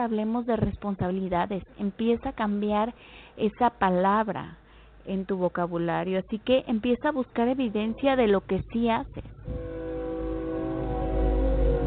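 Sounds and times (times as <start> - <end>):
speech: 0.0 - 9.6
train passing by: 7.7 - 11.8.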